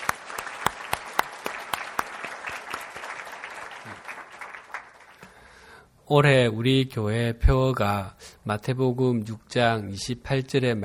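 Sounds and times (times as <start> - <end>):
audience applauding volunteers: 0.0 - 5.3
speech: 6.1 - 10.8.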